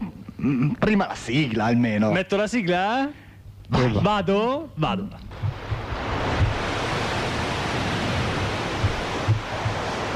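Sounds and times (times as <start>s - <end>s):
speech: 0.4s - 5.4s
soft low thumps rising from the surf: 5.2s - 10.1s
sea waves washing in with a hissing roar: 5.3s - 10.1s.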